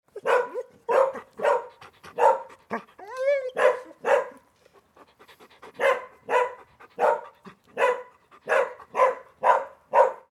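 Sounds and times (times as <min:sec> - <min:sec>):
dogs barking: 0:00.2 - 0:02.8, 0:03.6 - 0:04.4, 0:05.7 - 0:10.3
dogs whimpering: 0:02.7 - 0:03.9.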